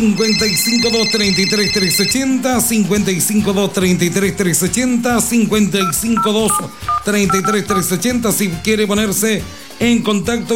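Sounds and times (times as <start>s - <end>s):
telephone ringing with electronic tones: 0.0s - 2.3s, 5.8s - 8.0s
continuous music bed: 0.0s - 10.5s
speech: 0.0s - 10.5s.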